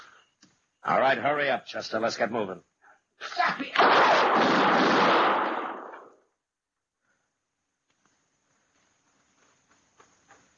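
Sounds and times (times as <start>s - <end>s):
speech: 0.9s - 2.7s
gunshot in an alley: 3.7s - 6.1s.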